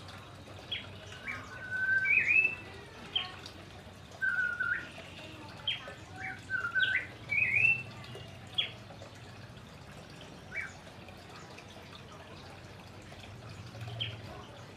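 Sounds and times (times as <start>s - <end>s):
orange-headed thrush singing loudly and continuously: 0.7s - 3.4s, 4.2s - 5.0s, 5.6s - 8.0s, 10.5s - 10.8s.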